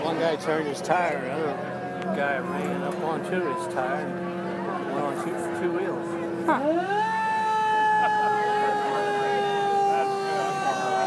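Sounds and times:
speech: 0.2s - 4.3s, 5.0s - 5.9s, 6.4s - 7.1s
old U.S. Army military police car siren wailing: 6.5s - 11.0s.

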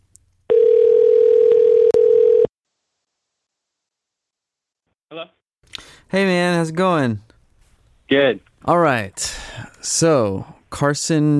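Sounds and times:
outgoing phone call ringing tone: 0.5s - 2.5s
speech: 6.1s - 7.3s, 8.1s - 11.3s.

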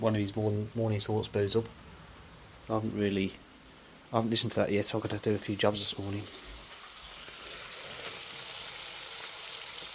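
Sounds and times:
speech: 0.0s - 1.9s, 2.7s - 3.4s, 4.1s - 6.4s
bacon sizzling in a pan for a breakfast sandwich: 5.6s - 9.9s.

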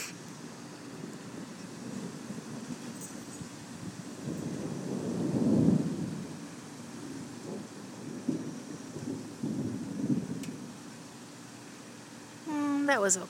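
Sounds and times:
steady hiss of rain or wind: 0.0s - 13.2s
low distant thunder rumbling: 0.7s - 11.1s
speech: 12.9s - 13.2s.

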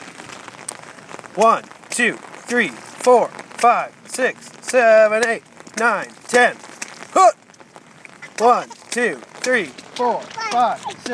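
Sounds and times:
rainstorm pouring down: 0.0s - 11.1s
speech: 1.4s - 7.4s, 8.4s - 11.1s
short rhythmic voiced calls: 4.4s - 11.1s.

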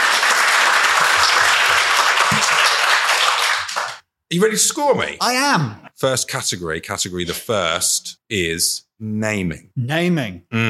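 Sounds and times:
audience applause: 0.0s - 4.0s
speech: 4.3s - 10.6s.

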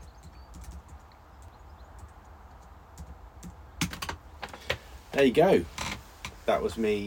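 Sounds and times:
computer keyboard typing a password: 0.0s - 4.2s
speech: 5.2s - 5.8s, 6.5s - 7.0s.

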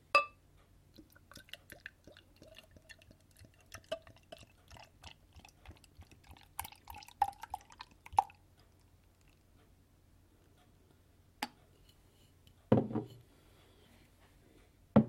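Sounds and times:
dark wheat beer from a 550 ml bottle pouring into a glass: 1.1s - 8.4s.

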